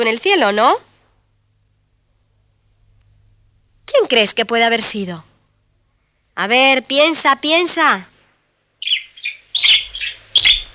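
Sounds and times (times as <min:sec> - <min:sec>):
speech: 0:00.0 - 0:00.9, 0:04.0 - 0:05.3, 0:06.4 - 0:08.1
small birds chirping after rain: 0:08.8 - 0:10.7.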